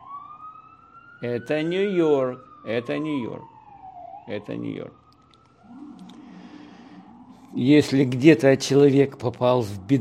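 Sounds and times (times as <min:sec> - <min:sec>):
ambulance siren in a New York city street: 0:00.0 - 0:09.9
speech: 0:01.2 - 0:03.5, 0:04.3 - 0:05.0, 0:07.6 - 0:09.9.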